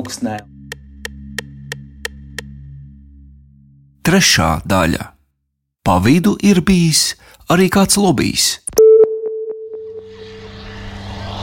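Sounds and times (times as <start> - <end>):
speech: 0.1 - 0.6, 4.1 - 5.1, 5.8 - 8.8
short electronic tone: 8.8 - 10.9.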